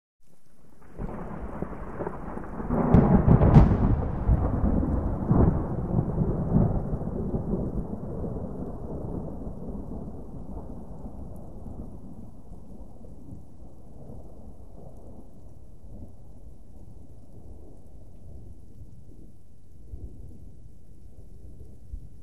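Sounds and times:
low thunder punch: 2.0s - 7.7s.

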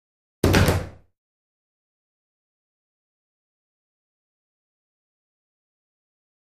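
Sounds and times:
ping pong paddle tosses: 0.4s - 1.0s.

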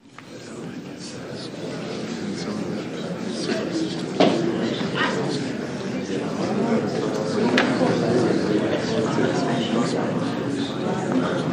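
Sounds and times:
courtroom murmuring and whispering: 0.0s - 11.5s.

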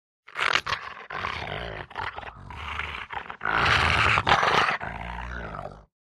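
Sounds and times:
Rottweiler growling: 0.3s - 5.9s.

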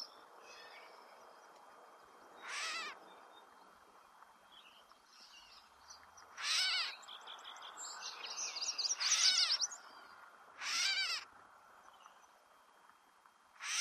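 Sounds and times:
catbird giving loud harsh nasal mewing calls: 2.4s - 3.0s, 6.4s - 7.0s, 8.9s - 9.7s, 10.6s - 11.2s.

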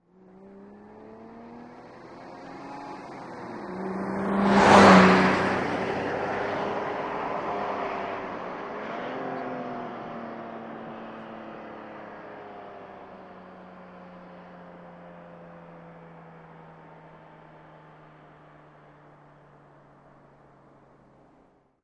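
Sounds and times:
car passing fast: 0.2s - 13.2s.

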